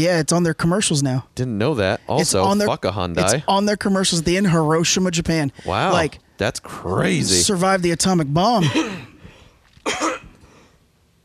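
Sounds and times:
speech: 0.0s - 9.1s, 9.8s - 10.2s
harsh cough: 8.6s - 9.2s, 9.8s - 10.4s
throat clearing: 8.6s - 9.2s, 9.8s - 10.4s.

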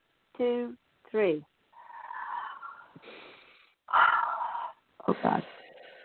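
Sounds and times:
speech: 0.4s - 1.5s, 5.0s - 5.6s
group taking a deep cleansing breath together: 2.9s - 3.8s.

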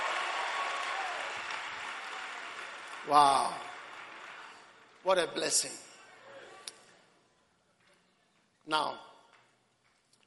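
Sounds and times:
large crowd applauding as a clap offering: 0.0s - 6.6s
speech: 3.1s - 3.7s, 5.0s - 5.9s, 8.7s - 9.1s.

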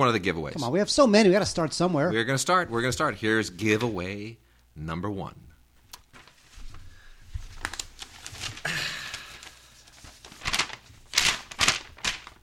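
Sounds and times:
speech: 0.0s - 5.5s
paper being crumpled and handled: 5.9s - 12.4s.

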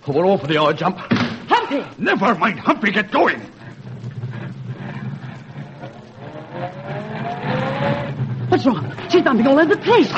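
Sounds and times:
speech: 0.0s - 3.6s, 8.6s - 10.1s
car engine accelerating hard and speeding away: 3.8s - 10.1s.

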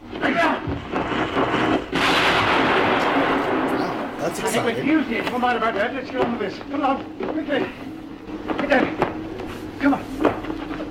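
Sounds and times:
rumbling background: 0.0s - 10.8s
explosion from wrenched cable junction box: 0.2s - 5.2s
speech: 4.6s - 7.9s, 8.5s - 9.0s.

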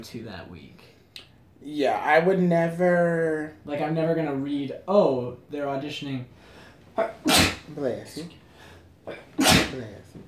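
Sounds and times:
speech: 0.0s - 1.0s, 1.6s - 8.4s, 9.0s - 10.2s
person sneezing: 7.0s - 7.7s, 9.1s - 9.9s.

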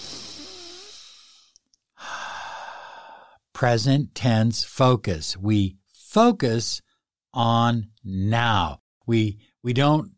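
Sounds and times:
long airy breath sighing out: 0.0s - 3.4s
strong deep inhale: 0.0s - 3.4s
speech: 3.6s - 6.8s, 7.4s - 10.1s.

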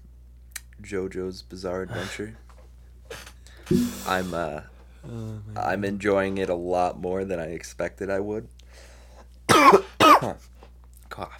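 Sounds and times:
speech: 0.8s - 2.5s, 3.1s - 8.9s, 9.6s - 10.5s, 11.2s - 11.3s
faint little throaty sound: 3.7s - 5.6s
person coughing harshly: 9.5s - 10.4s.

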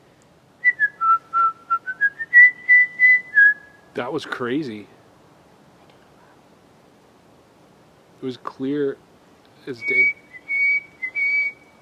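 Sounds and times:
person whistling a tune: 0.6s - 3.7s, 9.8s - 11.6s
speech: 4.0s - 5.0s, 8.2s - 10.2s.

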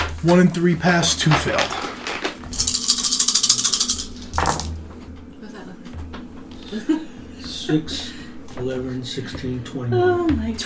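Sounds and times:
speech: 0.2s - 1.8s, 6.7s - 7.0s, 7.7s - 10.6s
dice rattling in a cup: 1.3s - 4.8s.

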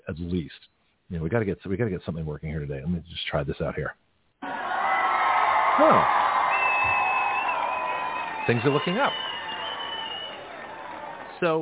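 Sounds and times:
speech: 0.1s - 4.0s, 5.8s - 6.3s, 8.5s - 9.4s, 11.4s - 11.6s
crowd cheering: 4.4s - 11.6s
high whistle: 5.8s - 11.4s.

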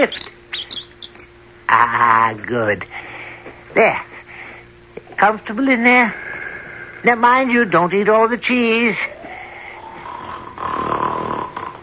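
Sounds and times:
speech: 0.0s - 0.8s, 1.7s - 3.1s, 3.7s - 4.1s, 5.2s - 6.2s, 7.0s - 9.1s
loud rumbling snore of a sleeping giant: 9.8s - 11.8s.

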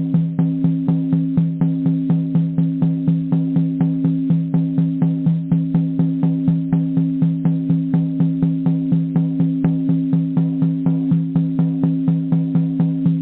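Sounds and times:
steady drumming: 0.0s - 13.2s.

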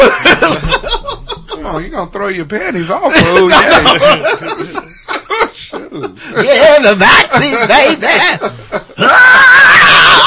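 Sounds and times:
laughter: 0.0s - 2.1s, 2.8s - 10.1s
speech: 1.8s - 4.7s, 6.0s - 9.5s
person screaming: 9.0s - 10.2s.

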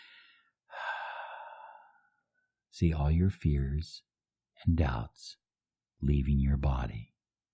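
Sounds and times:
deep breath exhaled during a guided relaxation exercise: 0.0s - 2.2s
speech: 2.8s - 5.4s, 6.0s - 7.1s.

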